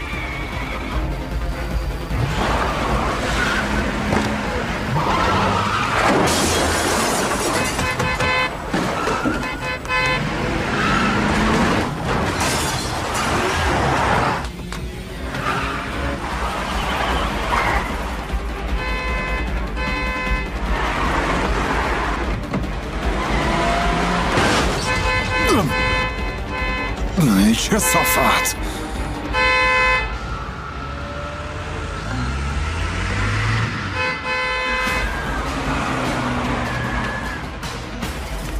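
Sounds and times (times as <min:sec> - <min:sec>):
car engines roaring in a police car chase: 0:00.0 - 0:38.5
tires screeching: 0:01.9 - 0:27.0, 0:27.8 - 0:38.1
car horns blaring: 0:07.4 - 0:11.8, 0:15.2 - 0:20.7, 0:23.0 - 0:30.6, 0:33.7 - 0:37.7
indistinct shouting voices: 0:25.4 - 0:26.0, 0:27.1 - 0:28.8
speech: 0:27.7 - 0:28.8.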